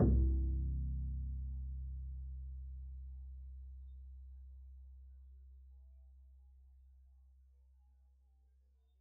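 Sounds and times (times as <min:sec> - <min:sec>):
double bass pizzicato note C1: 0:00.0 - 0:01.9.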